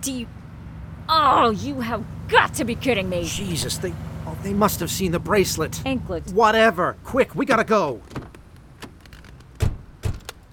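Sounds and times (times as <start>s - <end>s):
speech: 0.0s - 0.4s, 1.1s - 8.2s
car door shutting: 8.0s - 10.5s.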